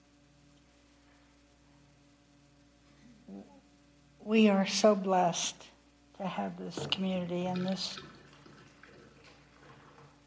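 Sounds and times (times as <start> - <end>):
faint low hum: 0.0 - 10.2
speech: 4.3 - 8.1
water pouring in a steady stream: 6.8 - 10.2.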